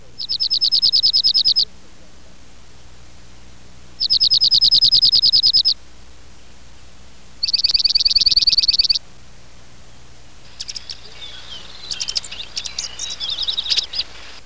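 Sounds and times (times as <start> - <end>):
junco calling: 0.0 - 9.1, 9.8 - 14.4.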